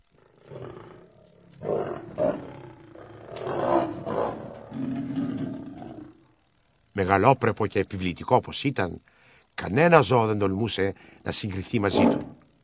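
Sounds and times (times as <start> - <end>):
large lion with a reddish mane roaring: 0.2 - 6.3, 11.8 - 12.4
speech: 7.0 - 12.3.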